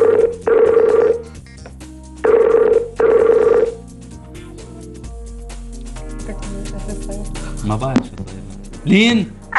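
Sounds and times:
telephone ringing on an outgoing call: 0.0 - 1.2, 2.2 - 3.8
speech: 8.9 - 9.4.

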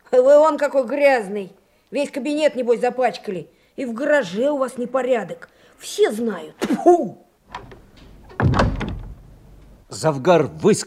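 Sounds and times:
speech: 0.1 - 7.7, 9.9 - 10.8
office door slamming shut: 7.5 - 9.7.

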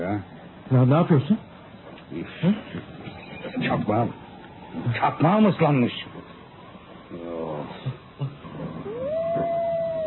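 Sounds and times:
speech: 0.1 - 1.5, 2.1 - 2.9, 3.6 - 6.2
wolf howling: 8.4 - 10.0.

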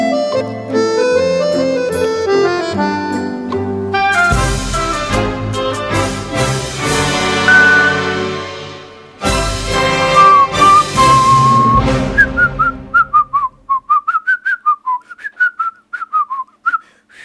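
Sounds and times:
backing music: 0.2 - 13.7
person practicing whistling a tune: 7.5 - 8.3, 10.2 - 17.2.

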